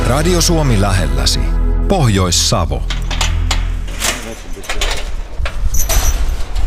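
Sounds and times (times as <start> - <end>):
speech: 0.1 - 3.0
door pulled open on a storehouse of old boats in Pohjois-Savo Finland: 2.9 - 6.6
metallic rattle: 2.9 - 6.6
scraping clattering knocks: 2.9 - 6.6.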